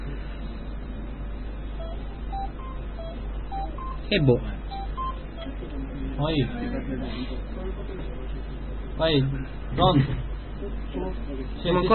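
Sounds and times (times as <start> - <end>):
steady low hum: 0.0 - 5.8
telephone keypad tones as a phone call is dialed: 1.8 - 5.5
speech: 4.1 - 4.6, 6.2 - 11.9.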